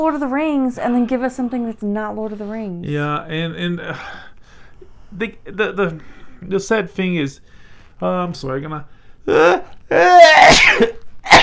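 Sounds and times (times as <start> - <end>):
speech: 0.0 - 4.2, 5.1 - 11.4
person sneezing: 10.2 - 11.4.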